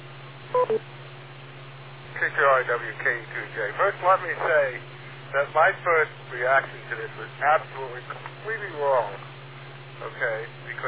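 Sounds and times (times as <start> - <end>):
faint steady hum on a narrow-band radio channel: 0.0 - 10.8
beep tone on an amateur radio net: 0.6 - 0.8
speech: 0.6 - 1.0, 2.2 - 9.3, 10.0 - 10.8.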